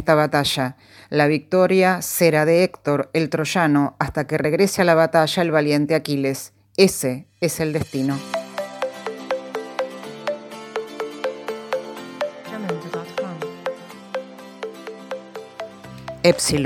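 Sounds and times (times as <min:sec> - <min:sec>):
speech: 0:00.0 - 0:08.4, 0:16.2 - 0:16.6
school recess bell electronic chime: 0:08.2 - 0:16.6.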